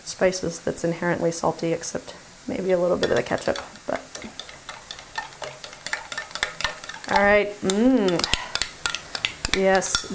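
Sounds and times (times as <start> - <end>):
speech: 0.2 - 4.0, 7.2 - 8.4, 9.6 - 10.1
ground beef sloppy joe mix sizzling in a skillet: 1.6 - 10.1
stirring sloppy joe mix with ground beef in a skillet: 2.7 - 10.1.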